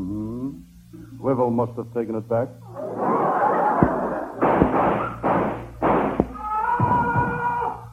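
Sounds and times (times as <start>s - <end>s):
bursts of rough hissing noise: 0.0s - 6.5s
low steady hum: 0.0s - 7.9s
speech: 1.2s - 3.1s
laughter: 2.7s - 4.4s
sharp gunshots beyond a door: 3.8s - 6.4s.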